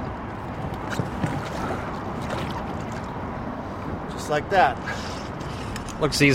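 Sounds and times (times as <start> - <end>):
water and wind around a small boat: 0.0 - 6.3
knocks and shifting thumps of a person settling into a small boat: 0.4 - 3.1
speech: 4.3 - 5.1, 6.0 - 6.3.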